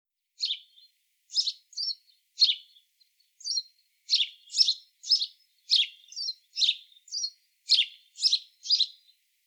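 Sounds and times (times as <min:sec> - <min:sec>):
house sparrow Passer domesticus chirping: 0:00.4 - 0:09.2.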